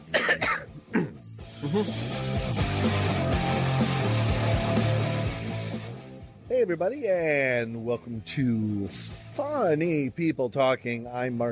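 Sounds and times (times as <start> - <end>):
person coughing: 0.0 - 1.8
music: 0.0 - 11.5
speech: 1.7 - 3.2, 6.5 - 11.5.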